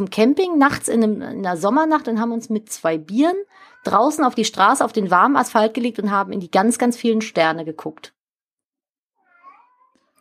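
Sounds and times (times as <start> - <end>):
speech: 0.0 - 8.2
cat meowing at a door wanting to go out: 9.2 - 10.1.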